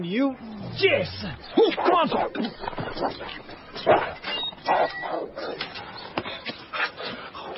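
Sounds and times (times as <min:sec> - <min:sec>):
speech: 0:00.0 - 0:05.6
dogs barking: 0:01.4 - 0:06.1.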